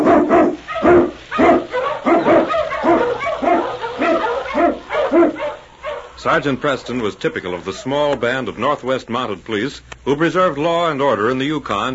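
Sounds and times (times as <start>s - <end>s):
pack of Eskimo husky sled dogs barking and yipping: 0.0s - 8.1s
speech: 6.2s - 11.9s.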